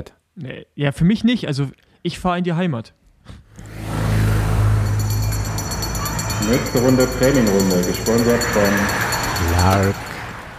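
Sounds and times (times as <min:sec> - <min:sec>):
speech: 0:00.0 - 0:03.4, 0:06.4 - 0:10.1
car engine starting, revving and driving off: 0:03.6 - 0:10.4.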